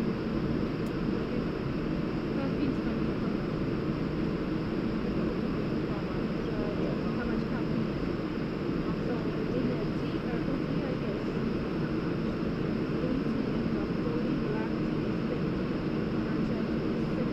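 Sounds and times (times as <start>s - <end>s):
airplane engines rumbling while waiting for departure: 0.0s - 17.3s
murmuring voices: 4.4s - 17.3s.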